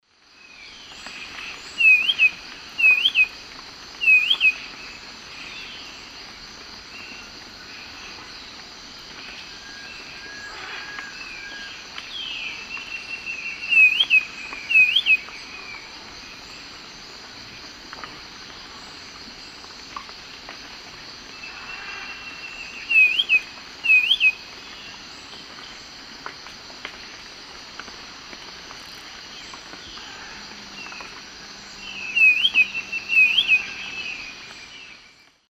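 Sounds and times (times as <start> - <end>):
Pachyramphus marginatus singing in South American eastern lowlands: 0.4 - 6.1, 9.2 - 17.1, 21.3 - 25.8, 29.2 - 35.4.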